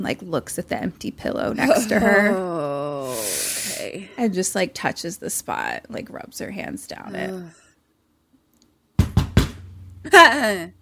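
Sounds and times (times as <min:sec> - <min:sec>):
speech: 0:00.0 - 0:07.6, 0:10.0 - 0:10.8
heavy pounding on a door: 0:09.0 - 0:09.7.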